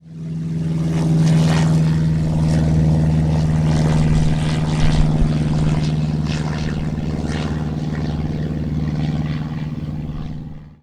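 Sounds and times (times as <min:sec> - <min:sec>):
airplane: 0:00.0 - 0:10.8.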